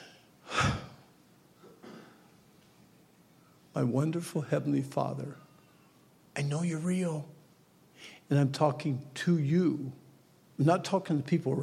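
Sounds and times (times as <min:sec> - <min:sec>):
speech: 0:03.8 - 0:05.5, 0:06.4 - 0:07.4, 0:08.0 - 0:10.0, 0:10.6 - 0:11.6
person taking a sharp breath before praying: 0:08.0 - 0:08.3.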